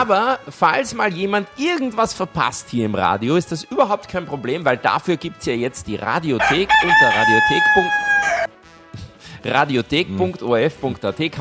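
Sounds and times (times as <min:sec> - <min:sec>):
speech: 0:00.0 - 0:08.5, 0:09.4 - 0:11.3
rooster crowing: 0:06.4 - 0:08.5.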